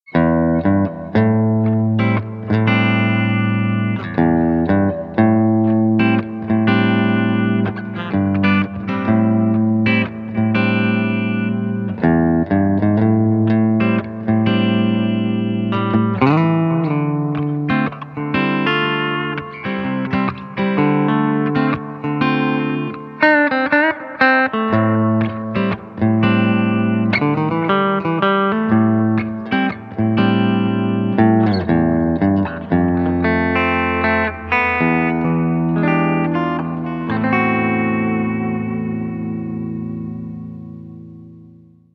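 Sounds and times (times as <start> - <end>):
clean electric guitar on bridge pickup: 0.0 - 41.9.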